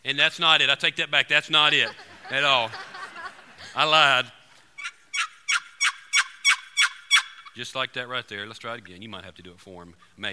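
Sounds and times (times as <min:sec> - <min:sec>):
speech: 0:00.1 - 0:02.9, 0:03.7 - 0:04.4, 0:07.6 - 0:10.3
laughter: 0:01.5 - 0:04.2
wooden turkey box call imitating a hen yelping: 0:04.8 - 0:07.6.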